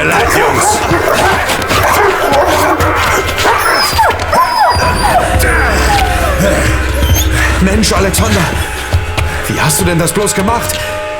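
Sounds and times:
two dogs barking and yelping: 0.0 - 7.6
speech: 7.8 - 8.8, 9.5 - 11.0.

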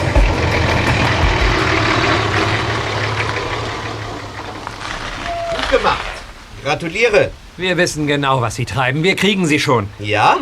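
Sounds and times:
heavy delivery van engine rumbling as it drives off: 0.0 - 7.6
speech: 6.6 - 10.3.

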